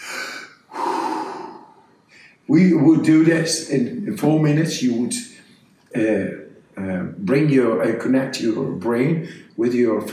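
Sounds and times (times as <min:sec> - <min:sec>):
deep breath in as a breathing exercise demonstration: 0:00.0 - 0:02.4
speech: 0:02.5 - 0:10.1.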